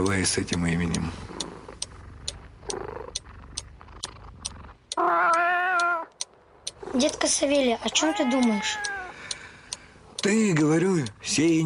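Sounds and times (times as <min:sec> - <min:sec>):
speech: 0:00.0 - 0:01.4, 0:07.0 - 0:08.9, 0:10.2 - 0:11.6
cat purring softly: 0:00.0 - 0:11.6
steady ticking clock: 0:00.0 - 0:11.6
cat giving a loud drawn-out meow: 0:05.0 - 0:06.2, 0:07.8 - 0:09.3.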